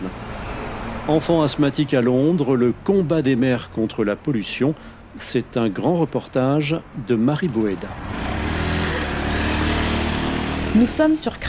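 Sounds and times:
heavy road traffic of trucks, buses and cars: 0:00.0 - 0:11.4
speech: 0:01.1 - 0:08.3, 0:10.8 - 0:11.4.

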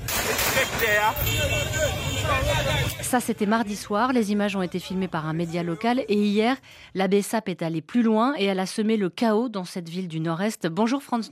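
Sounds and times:
engines rumbling during a brigade parade in Wanamint: 0:00.0 - 0:06.2
crowd of voices shouting during a brigade parade: 0:00.8 - 0:03.0
speech: 0:00.8 - 0:11.3.

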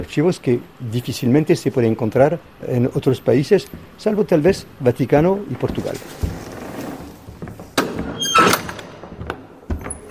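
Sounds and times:
speech: 0:00.0 - 0:06.4
door opening with a mechanical clunk and scraping rush: 0:05.6 - 0:10.0.

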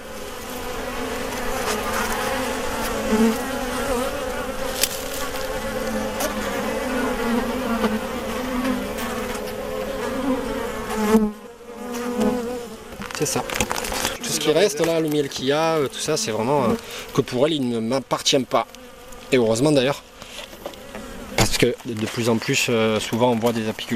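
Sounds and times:
many honeybees buzzing inside an opened hive: 0:00.0 - 0:23.9
speech: 0:03.1 - 0:03.5, 0:13.2 - 0:13.6, 0:14.4 - 0:20.1, 0:21.6 - 0:23.9
sharp clicks and rustles: 0:13.0 - 0:14.2.

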